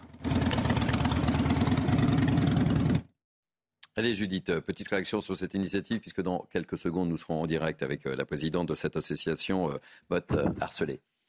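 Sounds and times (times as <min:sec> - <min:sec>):
motorcycle engine rumbling: 0:00.0 - 0:03.1
speech: 0:04.0 - 0:11.1.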